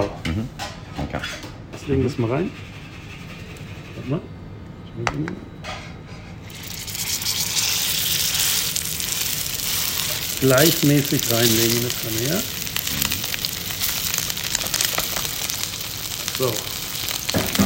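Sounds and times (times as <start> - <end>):
speech: 1.9 - 2.7, 4.0 - 4.4, 5.0 - 5.5, 10.4 - 12.6, 16.4 - 16.7
meat sizzling in a hot frying pan: 6.5 - 17.6.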